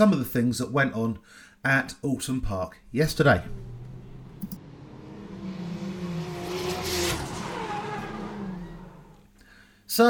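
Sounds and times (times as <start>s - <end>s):
speech: 0.0s - 3.7s
GT race car engines revving on a racetrack: 2.9s - 9.3s.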